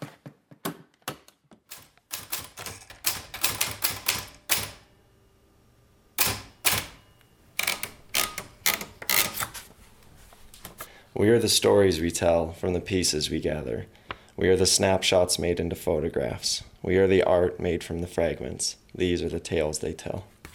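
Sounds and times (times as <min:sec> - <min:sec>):
manual typewriter keys clacking in a kitchen: 0:01.7 - 0:04.9, 0:06.2 - 0:09.7
speech: 0:11.2 - 0:20.3.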